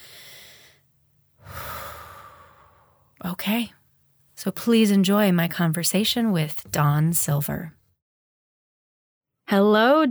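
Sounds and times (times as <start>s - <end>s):
deep loud airy inhale: 0.0s - 0.8s, 1.4s - 3.1s
soft breath out: 0.0s - 0.8s, 1.4s - 3.2s
speech: 3.2s - 3.8s, 4.4s - 7.8s, 9.5s - 10.0s.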